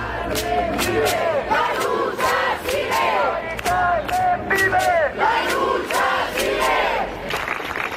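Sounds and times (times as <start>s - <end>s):
crowd shouting and cheering: 0.0s - 7.9s
large crowd applauding: 7.2s - 7.9s.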